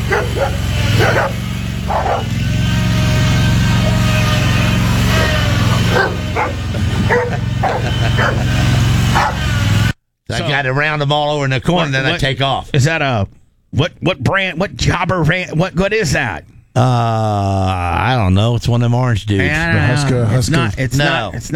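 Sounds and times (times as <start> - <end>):
dog barking: 0.0 - 2.5, 5.1 - 9.6
steady low engine rumble: 0.0 - 9.9
laughter: 5.0 - 9.1, 16.8 - 18.2
speech: 10.6 - 21.5.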